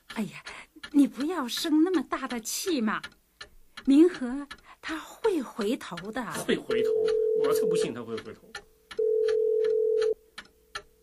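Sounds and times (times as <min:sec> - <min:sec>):
soft regular ticking: 0:00.0 - 0:11.0
speech: 0:00.2 - 0:03.2, 0:03.9 - 0:08.7
electronic telephone ringing in a living room: 0:06.7 - 0:08.1, 0:09.0 - 0:10.2.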